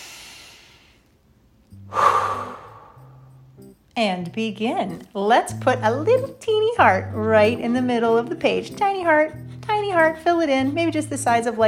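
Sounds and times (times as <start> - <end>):
deep breath during a guided calming exercise: 0.0 - 1.2, 1.9 - 3.4
speech: 4.0 - 11.6.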